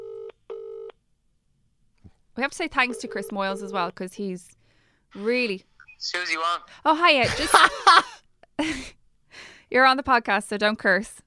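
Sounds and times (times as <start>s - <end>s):
electronic telephone dialing tones as a call is placed: 0.0s - 0.9s, 2.9s - 3.7s
speech: 2.4s - 9.0s, 9.7s - 11.2s
laughter: 7.2s - 8.9s.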